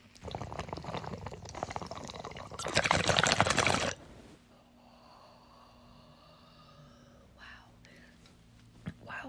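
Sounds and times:
water bubbling through a bong as someone draws a hit: 0.0s - 4.0s.

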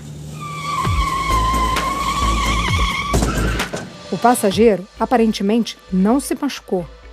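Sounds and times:
car tires skidding across pavement: 0.0s - 4.4s
car engine rumble: 0.0s - 7.1s
speech: 4.1s - 7.0s.

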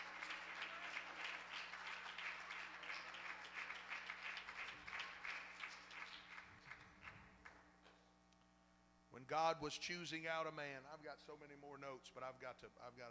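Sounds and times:
audience clapping: 0.0s - 7.6s
speech: 9.2s - 13.0s.

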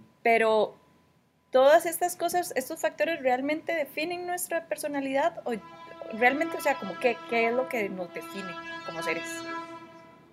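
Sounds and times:
speech: 0.2s - 0.8s, 1.5s - 9.6s
multi-toned train horn blast on a street in Escalante: 5.5s - 10.3s.

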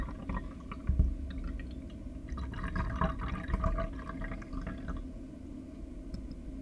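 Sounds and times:
tea pouring into a glass: 0.0s - 5.0s.

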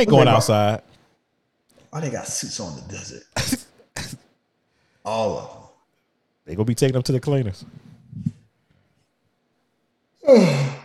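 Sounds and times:
speech: 0.0s - 0.9s, 1.9s - 4.2s, 5.0s - 5.6s, 6.4s - 8.3s, 10.2s - 10.8s
person yawning with a drawn-out voiced groan: 10.2s - 10.8s.

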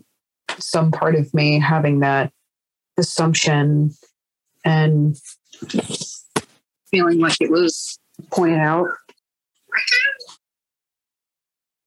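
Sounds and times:
speech: 0.6s - 2.4s, 3.0s - 6.1s, 6.9s - 9.1s, 9.7s - 10.2s
cat meowing: 9.7s - 10.3s.

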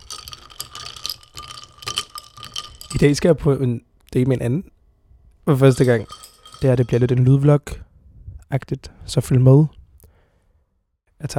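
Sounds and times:
straw stirring a drink in a glass: 0.0s - 3.2s, 5.6s - 7.0s
speech: 3.0s - 4.8s, 5.5s - 7.9s, 8.5s - 9.8s, 11.2s - 11.3s.

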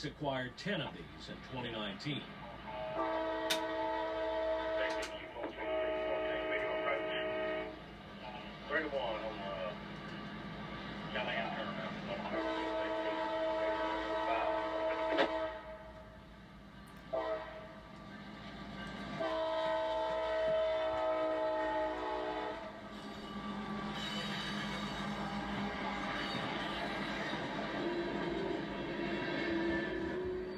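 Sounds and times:
speech: 0.0s - 3.2s, 8.8s - 9.6s, 11.1s - 11.7s
CSX freight train rolling rail noise: 0.0s - 30.5s
EMD ST70AH diesel locomotive horn blasts: 2.7s - 7.8s, 12.2s - 16.1s, 17.1s - 17.8s, 19.1s - 25.3s, 29.4s - 30.5s.

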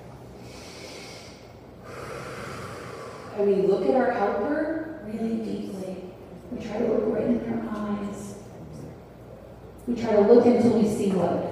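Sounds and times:
group taking a deep breath during a grounding exercise: 0.4s - 3.4s
speech: 3.4s - 8.3s, 9.9s - 11.4s.

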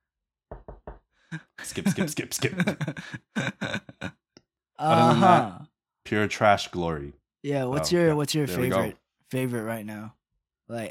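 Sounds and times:
solid knocking on a door: 0.5s - 1.0s
speech: 1.3s - 4.2s, 4.8s - 10.8s
laughter: 1.4s - 4.1s, 4.8s - 5.6s, 8.5s - 8.9s.

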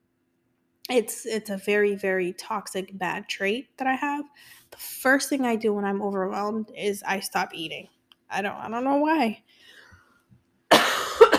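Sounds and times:
speech: 0.9s - 9.8s
person coughing: 10.7s - 11.3s.

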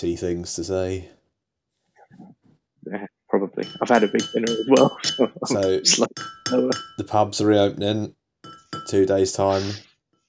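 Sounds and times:
speech: 0.0s - 1.2s, 2.1s - 8.2s, 8.8s - 9.9s
glasses clinking glass on glass: 3.6s - 7.7s, 8.4s - 9.6s.

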